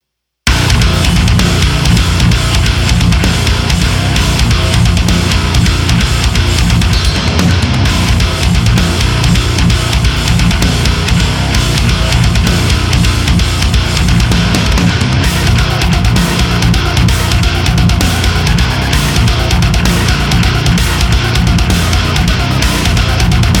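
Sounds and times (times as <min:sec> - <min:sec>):
metal tones: 0:00.5 - 0:23.5.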